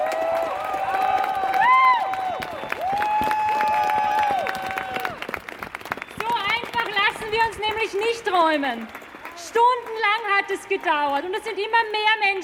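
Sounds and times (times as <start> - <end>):
shouts: 0.0 - 5.2
voices cheering and whooping: 0.0 - 5.3
crowd applauding people chained to a construction site: 0.0 - 12.4
whistles: 2.2 - 4.0, 5.8 - 6.8
speech: 8.3 - 12.4.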